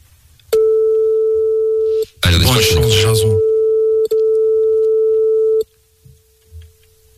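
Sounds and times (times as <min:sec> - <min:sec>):
telephone call tone while calling a listener: 0:00.5 - 0:02.0, 0:02.8 - 0:05.7
speech: 0:02.5 - 0:03.5.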